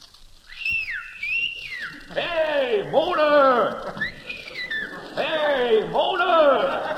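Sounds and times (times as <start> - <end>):
person whistling up to a window: 0.4 - 2.1, 4.0 - 5.2
laughter: 2.0 - 6.9
speech: 2.1 - 4.0.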